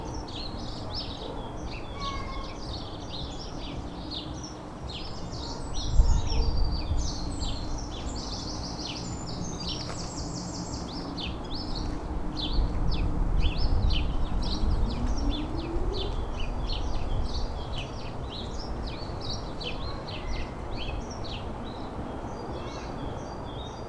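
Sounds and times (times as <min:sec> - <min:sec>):
birds: 0:00.0 - 0:23.8.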